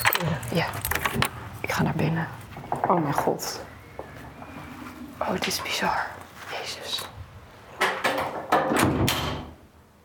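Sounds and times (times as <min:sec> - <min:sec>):
speech: 0:00.2 - 0:03.7, 0:05.3 - 0:07.1
door swinging shut: 0:07.8 - 0:09.6.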